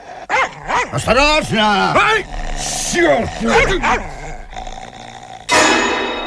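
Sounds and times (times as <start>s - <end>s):
dog growling: 0.0s - 6.2s
dog barking: 0.2s - 1.2s, 3.0s - 4.4s
speech: 0.9s - 4.2s.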